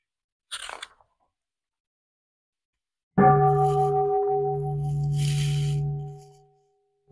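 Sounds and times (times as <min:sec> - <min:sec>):
bell struck and ringing: 0:03.2 - 0:06.4.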